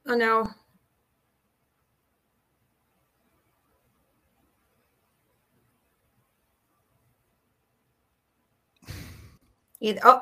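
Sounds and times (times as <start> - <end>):
speech: 0.1 - 0.6, 9.8 - 10.1
person exhaling softly like a sigh: 8.8 - 9.4.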